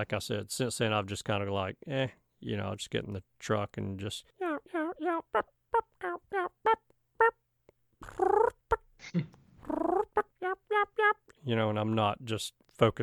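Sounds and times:
speech: 0.0 - 7.4, 9.0 - 9.4, 10.8 - 13.0
imitated turkey clucking on a call: 4.4 - 7.4, 8.0 - 8.8, 9.7 - 11.2.

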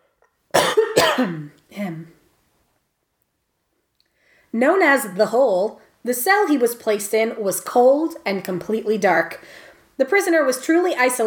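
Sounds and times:
loud phlegmy cough of a prisoner in solitary confinement: 0.5 - 1.5
speech: 1.1 - 2.2, 4.5 - 11.2.

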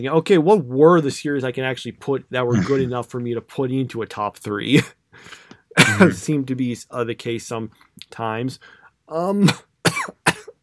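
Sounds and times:
speech: 0.0 - 9.7
loud harsh coughs: 2.5 - 2.9, 5.8 - 6.2, 9.4 - 10.6.

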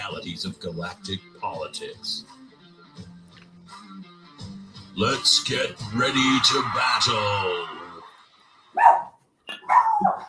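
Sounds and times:
speech: 0.2 - 2.4, 5.0 - 7.7
dog barking excitedly: 8.8 - 10.2.

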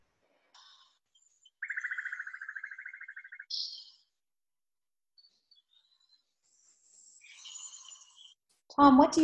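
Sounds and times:
small birds chirping and twittering outdoors: 0.6 - 4.2, 5.1 - 8.5
speech: 8.8 - 9.2.

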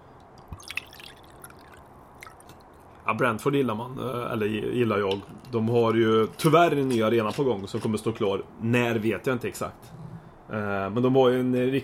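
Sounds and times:
faint steady hiss: 0.0 - 11.8
whisky poured into a glass: 0.4 - 2.6
speech: 3.1 - 11.8.

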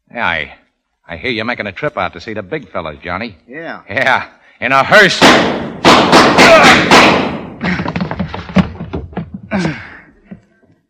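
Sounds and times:
speech: 0.2 - 7.3, 9.6 - 9.9
gunshots fired during a confrontation: 5.0 - 8.2.

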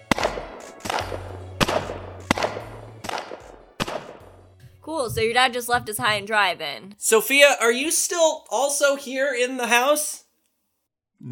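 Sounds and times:
shotgun blasts echoing: 0.0 - 4.4
speech: 4.9 - 10.2.

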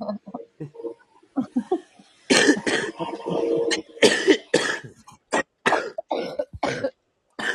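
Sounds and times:
harsh hacking coughs: 2.3 - 3.0, 3.7 - 7.5.

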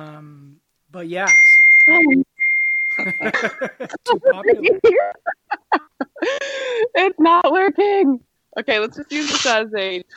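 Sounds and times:
speech: 0.9 - 2.2, 3.0 - 10.1
short chirps and blips of computer message notifications: 1.3 - 3.4
laughter: 3.0 - 6.8.

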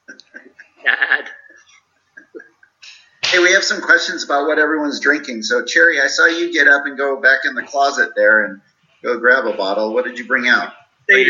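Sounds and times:
sheep bleating: 0.8 - 1.5
speech: 3.5 - 11.2.

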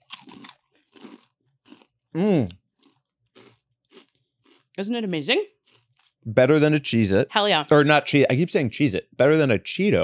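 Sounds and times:
crunching bites into a cheese puff chip: 0.0 - 4.7
chewing: 0.0 - 4.8, 5.5 - 6.2
speech: 2.2 - 2.6, 4.8 - 5.6, 6.2 - 10.0.

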